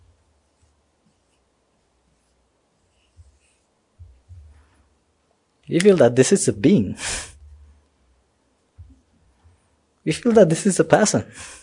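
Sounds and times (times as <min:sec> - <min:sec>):
pen drawing on paper: 0:00.0 - 0:04.9
speech: 0:05.7 - 0:07.3, 0:10.1 - 0:11.6.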